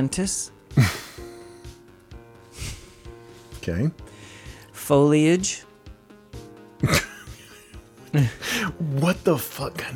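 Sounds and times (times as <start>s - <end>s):
speech: 0.0s - 1.0s, 3.7s - 4.1s, 4.9s - 5.7s, 8.1s - 9.9s
person sniffing through the nose: 2.5s - 3.3s.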